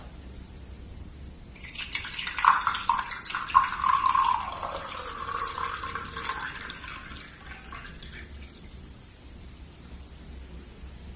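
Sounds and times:
hot water pouring into a cup: 1.5 - 9.7.

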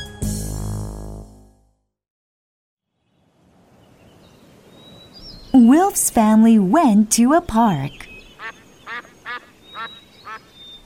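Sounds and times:
speech: 5.6 - 8.1
duck quacks in a park: 8.4 - 10.5.

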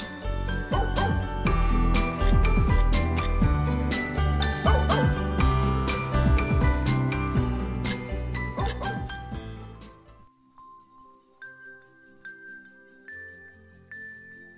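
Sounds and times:
dogs yipping and whining yelps: 0.0 - 10.0
many dogs barking: 0.6 - 2.2, 4.4 - 6.0, 8.5 - 9.1.

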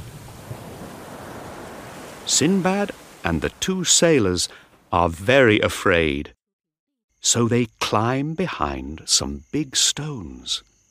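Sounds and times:
ocean surf roaring with heavy wave breaking: 0.0 - 4.8
speech: 2.3 - 6.4, 7.2 - 10.7.

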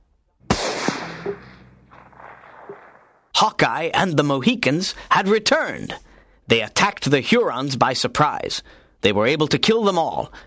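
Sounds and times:
rifle shot: 0.4 - 3.3
speech: 3.4 - 10.4.

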